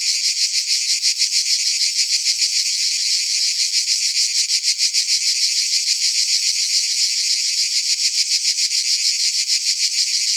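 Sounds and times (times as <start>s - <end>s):
several cicadas droning together: 0.0s - 10.3s.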